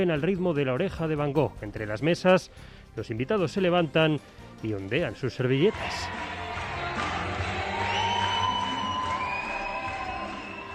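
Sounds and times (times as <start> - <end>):
speech: 0.0 - 6.3
wedding guests cheering and shouting: 5.6 - 10.7
wedding guests clapping: 5.6 - 10.7
shrill whistles of wedding guests: 7.7 - 10.7.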